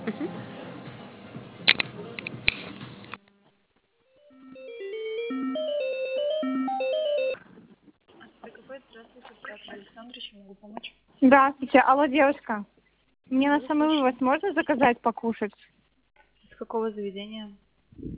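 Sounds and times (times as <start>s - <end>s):
melodic phone ring tune over a phone line during call transfer: 4.2s - 7.4s
speech: 11.2s - 12.7s, 13.3s - 15.8s, 16.6s - 18.1s.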